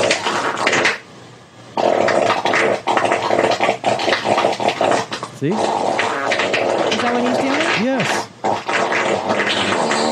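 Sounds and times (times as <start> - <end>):
raspy fart sounds changing pitch: 0.0 - 1.0, 1.8 - 10.1
speech: 5.4 - 5.8, 7.0 - 8.3.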